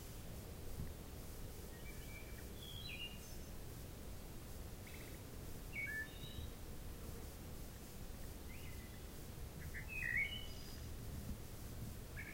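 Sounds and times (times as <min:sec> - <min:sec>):
steady low background noise: 0:00.0 - 0:12.3
wood thrush song: 0:01.7 - 0:03.6, 0:05.7 - 0:06.5, 0:08.5 - 0:11.0, 0:12.1 - 0:12.3.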